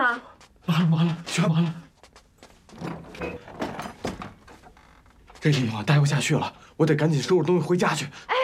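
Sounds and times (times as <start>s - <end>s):
speech: 0.1s - 1.8s, 5.4s - 8.3s
knocking clunks and rattling scrapes of door being worked open: 2.6s - 5.4s
door being opened: 2.7s - 5.5s.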